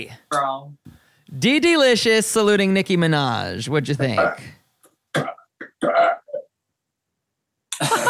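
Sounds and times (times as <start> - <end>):
speech: 0.0 - 4.6, 5.2 - 6.1
guttural burps: 4.2 - 4.5, 5.1 - 6.5.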